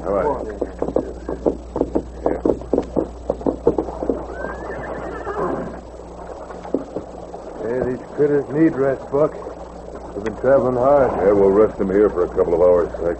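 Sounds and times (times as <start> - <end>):
speech: 0.0 - 1.5, 8.2 - 9.5, 10.2 - 13.1
white horse's hooves clopping as it is led to a spring: 0.4 - 5.8, 6.5 - 7.2
white horse neighing: 4.0 - 5.8.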